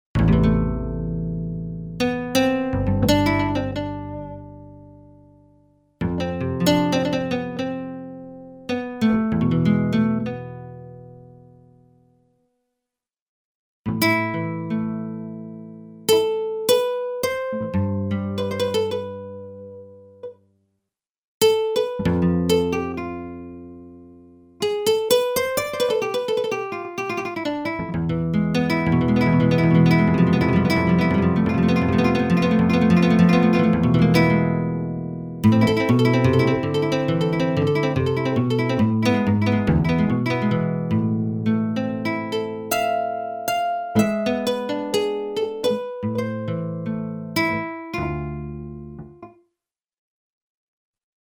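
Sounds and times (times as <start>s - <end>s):
nylon guitar synth patch: 0.2s - 5.4s, 6.0s - 11.1s, 13.9s - 20.3s, 21.4s - 24.0s, 24.6s - 49.3s.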